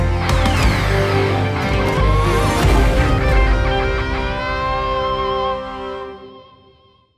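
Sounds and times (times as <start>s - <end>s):
victory fanfare: 0.2s - 6.4s.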